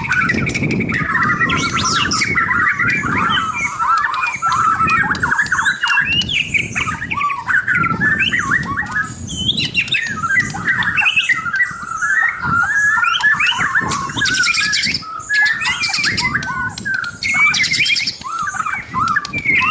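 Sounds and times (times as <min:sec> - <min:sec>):
white-rumped shama singing: 0:00.0 - 0:19.6.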